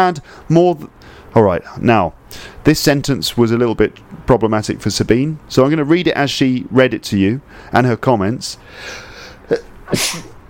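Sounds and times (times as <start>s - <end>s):
speech: 0.0s - 10.3s
person sneezing: 8.9s - 10.4s.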